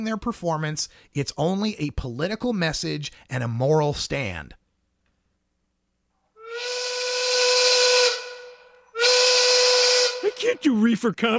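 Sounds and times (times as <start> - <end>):
speech: 0.0 - 4.6, 10.4 - 11.3
steam whistle blowing: 6.4 - 10.5.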